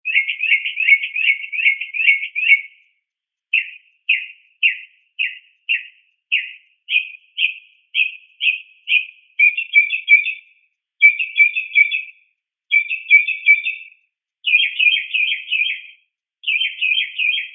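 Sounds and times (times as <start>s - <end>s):
mockingbird chattering and trilling calls: 0.0s - 2.8s, 3.5s - 17.5s.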